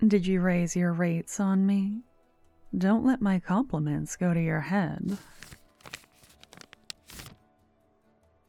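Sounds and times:
speech: 0.0s - 2.1s, 2.7s - 5.6s
sheet of paper wedding invitation sliding across a bar top: 5.1s - 7.4s.

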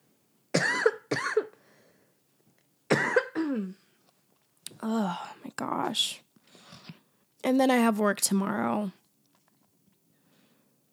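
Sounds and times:
person coughing: 0.6s - 1.6s, 2.9s - 3.8s
speech: 5.9s - 6.2s, 7.5s - 9.0s.

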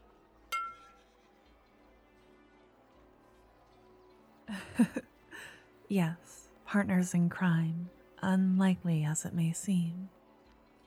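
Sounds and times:
glasses clinking in a toast: 0.5s - 1.0s
speech: 4.5s - 10.2s.

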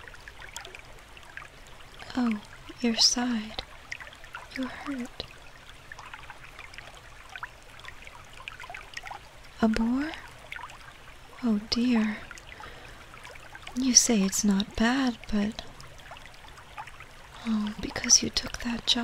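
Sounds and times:
flowing river water: 0.0s - 19.0s
speech: 2.2s - 3.6s, 4.6s - 5.3s, 9.6s - 10.2s, 11.4s - 12.3s, 13.8s - 15.7s, 17.4s - 19.0s.

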